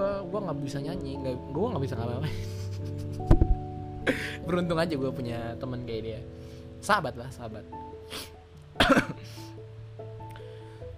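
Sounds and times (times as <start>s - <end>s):
speech: 0.2s - 9.4s
person coughing harshly: 8.8s - 9.3s.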